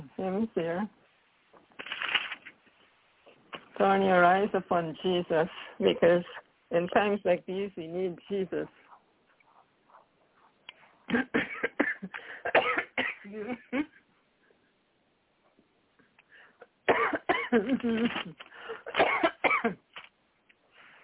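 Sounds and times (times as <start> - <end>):
speech: 0.2 - 1.0, 3.8 - 8.8, 11.1 - 14.0, 16.9 - 19.8
dry hacking coughs: 11.1 - 13.3, 16.9 - 17.6, 18.8 - 19.8.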